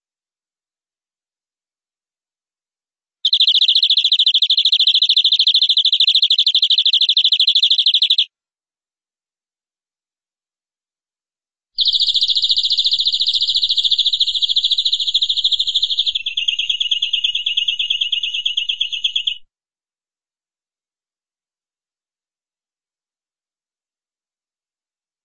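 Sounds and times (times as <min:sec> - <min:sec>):
canary song in long dense buzzy high trills: 0:03.2 - 0:08.3, 0:11.8 - 0:19.4.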